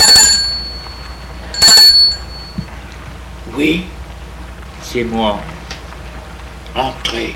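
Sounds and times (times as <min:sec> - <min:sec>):
gate doorbell ringing: 0:00.0 - 0:02.8
faint hum: 0:00.0 - 0:07.3
speech: 0:03.6 - 0:03.9, 0:04.9 - 0:05.5, 0:06.8 - 0:07.3.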